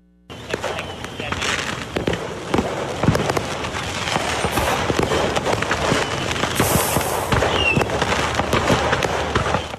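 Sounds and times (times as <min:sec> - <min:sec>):
voices: 0:00.3 - 0:02.2
fireworks cracking and popping from a burning truck: 0:00.3 - 0:09.7.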